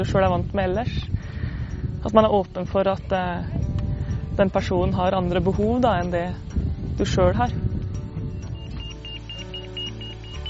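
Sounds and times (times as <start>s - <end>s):
speech: 0.0s - 1.3s, 2.0s - 3.6s, 4.4s - 7.7s
low rumbling background: 0.0s - 10.4s
avalanche transceiver beeping short high-pitched electronic tones: 8.4s - 10.4s.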